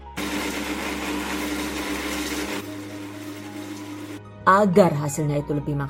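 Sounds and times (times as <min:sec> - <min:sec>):
spice blender grinding dried spices into fine powder: 0:00.0 - 0:04.2
speech: 0:04.5 - 0:05.8.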